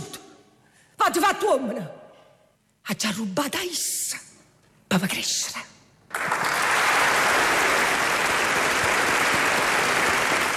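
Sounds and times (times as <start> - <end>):
speech: 1.1 - 2.0, 2.9 - 4.2, 4.9 - 6.4
group applauding in a studio: 6.1 - 10.5.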